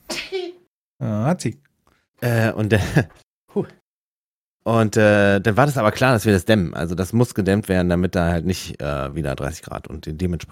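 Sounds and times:
sneeze: 0.0 - 0.6
speech: 1.0 - 3.8, 4.6 - 10.5
laughter: 2.6 - 3.2.

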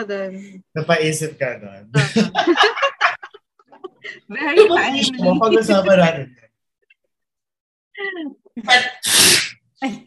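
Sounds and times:
speech: 0.0 - 2.9, 4.0 - 6.4, 8.0 - 10.0
laughter: 2.0 - 6.2
single loud sneeze: 8.7 - 9.6.

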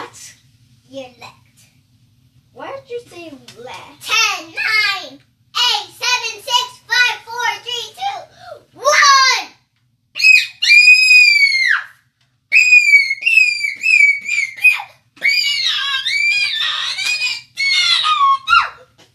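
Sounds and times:
speech: 0.9 - 1.5, 2.6 - 8.9
children screaming: 10.2 - 18.9.

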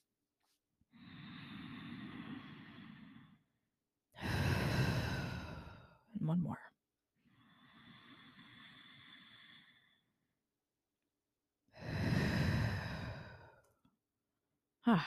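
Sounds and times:
deep breathing during a guided breathing exercise: 0.9 - 6.1, 7.2 - 10.3, 11.7 - 13.9
speech: 6.3 - 6.6, 14.9 - 15.0.

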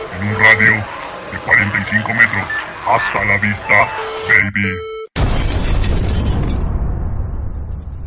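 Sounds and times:
speech: 0.2 - 4.9
self-destruct explosion rumbling roar: 5.2 - 8.0.

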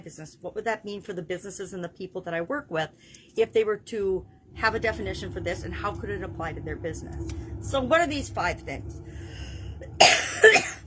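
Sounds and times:
speech: 0.1 - 9.2
coughing: 10.0 - 10.8.

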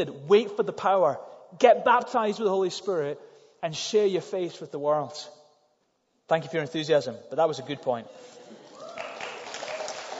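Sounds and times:
speech: 0.0 - 5.4, 6.3 - 8.4
audience clapping: 8.6 - 10.1.

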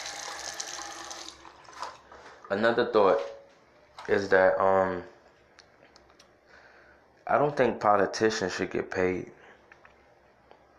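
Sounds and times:
water pouring into a glass: 0.0 - 2.0
speech: 2.5 - 3.4, 4.0 - 5.2, 7.3 - 9.4.

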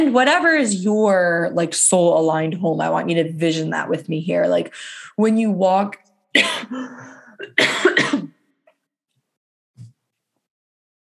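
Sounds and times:
speech: 0.0 - 8.3
person in a coughing fit: 6.4 - 8.4.

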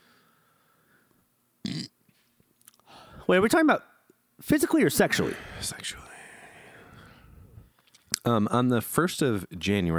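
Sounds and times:
loud burp: 1.6 - 2.0
speech: 3.3 - 6.1, 8.2 - 9.9.

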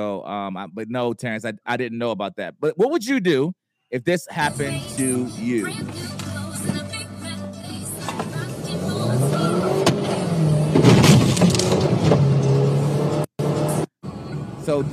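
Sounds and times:
speech: 0.0 - 6.8, 14.7 - 14.9
rushing road and tire noise: 4.4 - 14.9
car engine revving on a one-lane highway: 4.5 - 14.9.

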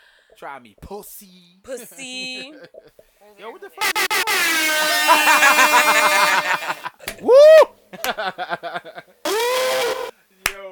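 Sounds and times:
speech: 0.3 - 9.2
laughter: 2.0 - 3.0, 4.8 - 9.2
air horn sound effect blasts: 3.8 - 6.9, 9.3 - 10.1.

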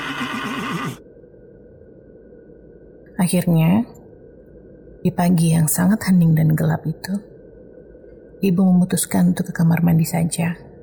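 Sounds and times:
horse neighing: 0.0 - 1.0
speech: 3.2 - 4.0, 5.0 - 7.3, 8.4 - 10.7.

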